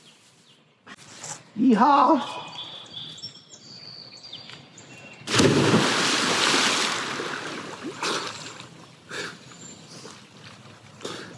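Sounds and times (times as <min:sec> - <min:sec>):
speech: 0:01.6 - 0:02.5
person jumping into water for a swim: 0:05.3 - 0:08.8.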